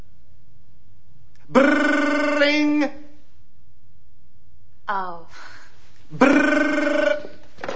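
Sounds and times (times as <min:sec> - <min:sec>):
brief vocal sound: 0:01.4 - 0:02.7, 0:06.1 - 0:07.4
voice imitating an office telephone bell ringing: 0:01.5 - 0:02.9, 0:06.2 - 0:07.4.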